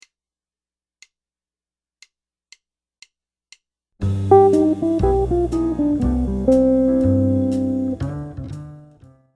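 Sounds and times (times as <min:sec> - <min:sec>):
jazz guitar lick: 0:04.0 - 0:08.9.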